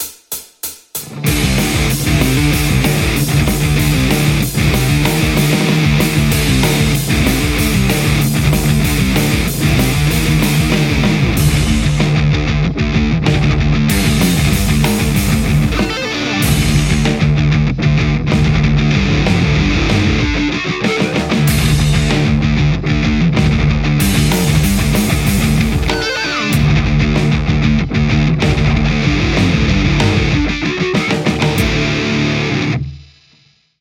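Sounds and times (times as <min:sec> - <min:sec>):
metal electric guitar: 0:01.0 - 0:33.5.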